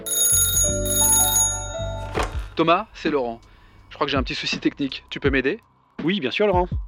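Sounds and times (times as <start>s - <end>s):
telephone with electronic bell-like ringtone for an incoming call: 0.0s - 2.8s
speech: 2.6s - 6.8s.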